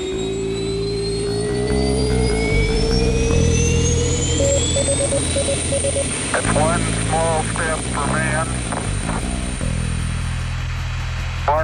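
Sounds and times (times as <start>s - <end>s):
rocket engines roaring at launch: 0.0s - 11.6s.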